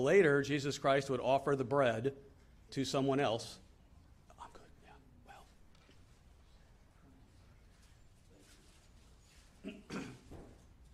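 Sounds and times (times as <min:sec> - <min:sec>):
speech: 0:00.0 - 0:03.6
gravelly coughs: 0:09.6 - 0:10.5
person clearing throat: 0:09.6 - 0:10.5.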